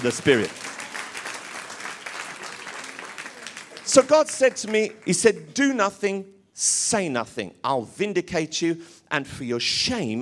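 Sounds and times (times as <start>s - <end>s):
speech: 0.0s - 0.8s, 3.9s - 10.2s
audience clapping during a church sermon: 0.0s - 5.6s.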